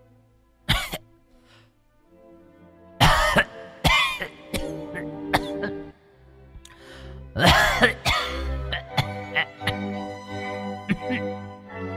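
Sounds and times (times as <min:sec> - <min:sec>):
woman clearing throat: 0:00.7 - 0:01.0, 0:03.0 - 0:05.8, 0:07.4 - 0:09.8, 0:10.9 - 0:11.3
woman coughing hard in an inner room: 0:00.7 - 0:01.0, 0:03.0 - 0:05.8, 0:07.4 - 0:09.8, 0:10.9 - 0:11.3.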